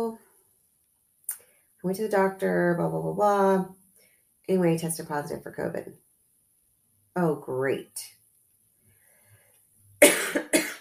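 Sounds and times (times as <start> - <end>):
speech: 0.0 - 0.2, 1.8 - 3.8, 4.5 - 6.0, 7.2 - 8.2
person with a cold coughing: 10.0 - 10.7.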